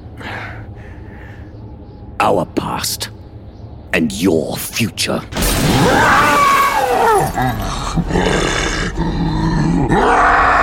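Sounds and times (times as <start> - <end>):
speech: 2.2 - 3.2, 3.9 - 6.2, 7.0 - 10.4
rumble of shattering crumbling ground of a planet: 5.3 - 9.0
huge scaled winged monster growling and roaring as it bursts from the ground: 5.6 - 10.6.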